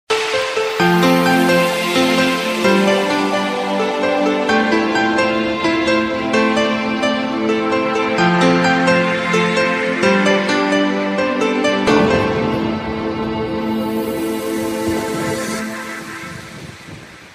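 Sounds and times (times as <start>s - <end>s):
piano logo jingle: 0.1s - 16.8s.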